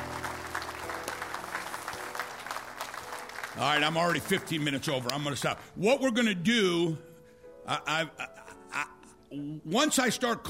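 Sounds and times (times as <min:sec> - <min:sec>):
audience clapping in a large room: 0:00.0 - 0:05.6
speech: 0:03.6 - 0:10.4.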